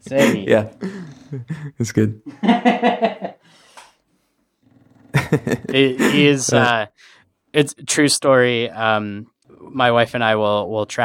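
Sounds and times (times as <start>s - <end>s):
speech: 0.0s - 3.3s, 5.3s - 11.0s
laughter: 0.1s - 3.5s, 5.1s - 6.8s
dog snoring loudly: 4.6s - 6.8s.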